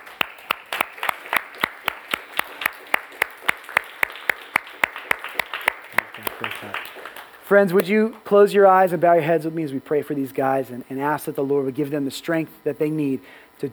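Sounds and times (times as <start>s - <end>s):
congregation clapping: 0.0s - 8.3s
speech: 6.6s - 13.7s.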